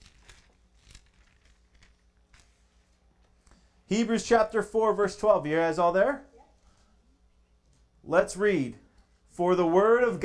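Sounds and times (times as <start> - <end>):
thin Bible pages turning: 0.0 - 3.6
low room hum: 0.0 - 10.2
speech: 3.9 - 6.3, 8.1 - 8.8, 9.4 - 10.2.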